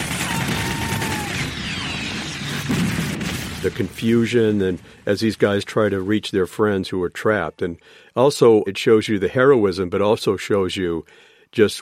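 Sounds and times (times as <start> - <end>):
movie battle gunfire: 0.0 - 5.6
movie battle explosions: 0.0 - 6.7
speech: 3.6 - 11.7.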